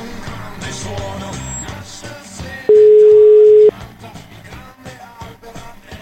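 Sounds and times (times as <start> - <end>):
music: 0.0 - 6.0
outgoing phone call ringing tone: 2.7 - 3.7.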